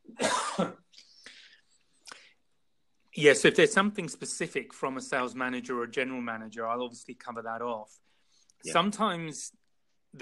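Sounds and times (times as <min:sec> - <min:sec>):
person coughing: 0:00.1 - 0:00.9
speech: 0:00.6 - 0:00.8, 0:03.2 - 0:10.2.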